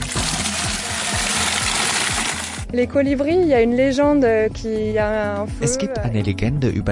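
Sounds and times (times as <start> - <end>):
water pouring from canisters into two watering cans at the roadside: 0.0 - 2.7
speech: 2.7 - 6.9.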